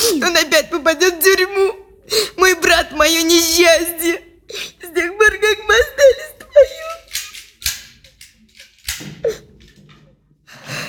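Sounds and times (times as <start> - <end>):
speech: 0.2 - 6.3
keys fumbling in a front door lock: 6.6 - 10.0.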